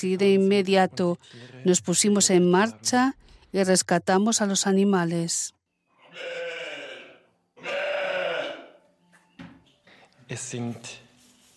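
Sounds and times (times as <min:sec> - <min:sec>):
speech: 0:00.0 - 0:06.5, 0:10.3 - 0:11.0
Valais Blacknose and Jacob wool sheep bleating: 0:06.0 - 0:08.8.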